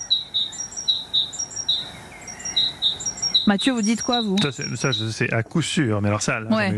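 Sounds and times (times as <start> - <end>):
great tit singing: 0.0 - 5.4
faint low noise: 0.0 - 6.7
speech: 3.5 - 6.7.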